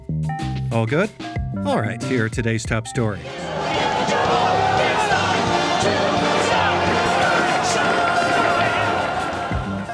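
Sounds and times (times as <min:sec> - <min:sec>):
speech: 0:00.7 - 0:03.7
crowd of street demonstrators shouting in New York: 0:03.3 - 0:09.8.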